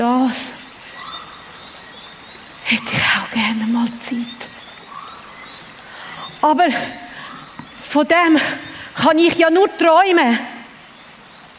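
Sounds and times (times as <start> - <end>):
speech: 0.0 - 0.6, 2.7 - 4.5, 6.4 - 7.0, 7.9 - 10.5
water babbling: 0.0 - 11.5
faint bird chirps: 0.3 - 8.8.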